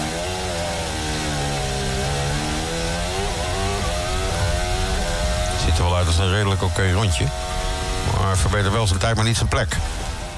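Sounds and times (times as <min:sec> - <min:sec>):
Formula 1 car engine accelerating, heard onboard: 0:00.0 - 0:10.3
speech: 0:06.0 - 0:07.6, 0:08.2 - 0:10.0.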